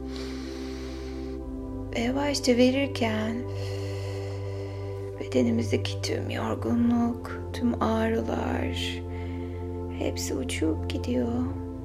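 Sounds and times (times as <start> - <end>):
long airy inhale: 0.0 - 1.8, 3.4 - 5.2, 9.0 - 9.9
soft sustained musical drone: 0.0 - 11.8
speech: 2.0 - 3.8, 5.3 - 9.1, 10.0 - 11.6.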